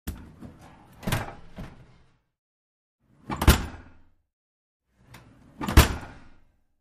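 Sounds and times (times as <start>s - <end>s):
oven door opening and closing: 0.1s - 2.1s, 3.2s - 4.0s, 5.0s - 6.4s.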